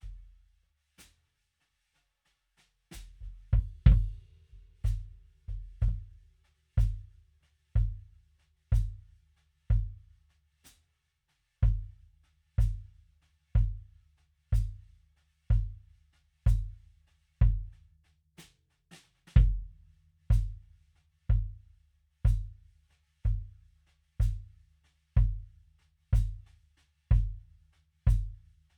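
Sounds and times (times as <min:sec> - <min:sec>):
kick drum through an EQ: 0:03.0 - 0:10.2, 0:11.6 - 0:12.0, 0:12.6 - 0:14.0, 0:14.6 - 0:17.9, 0:19.3 - 0:21.7, 0:22.3 - 0:22.6, 0:23.2 - 0:28.5.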